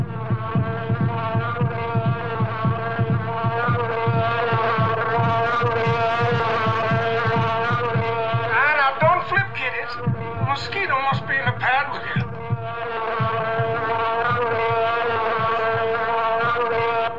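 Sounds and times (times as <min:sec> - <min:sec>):
heartbeat thumping: 0:00.0 - 0:17.1.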